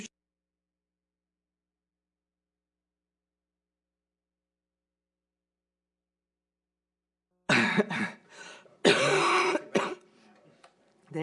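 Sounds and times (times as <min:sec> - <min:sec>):
person coughing harshly: 0:07.5 - 0:08.2, 0:08.8 - 0:10.1
throat clearing: 0:07.5 - 0:08.2, 0:08.8 - 0:10.1.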